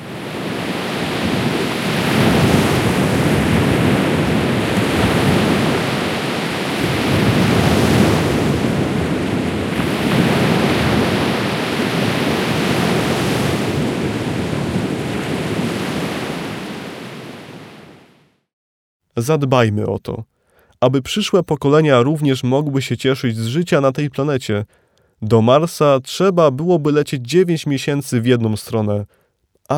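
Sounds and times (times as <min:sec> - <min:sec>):
Baltic Sea waves washing ashore: 0:00.0 - 0:18.4
wind rushing over the water: 0:00.0 - 0:18.4
speech: 0:19.2 - 0:29.7.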